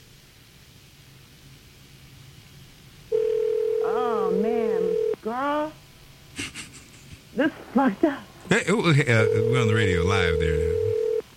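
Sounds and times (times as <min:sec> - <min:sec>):
electronic ringback tone over a phone line: 0:03.1 - 0:05.2, 0:09.0 - 0:11.2
laughter: 0:06.4 - 0:07.8
speech: 0:07.4 - 0:10.8.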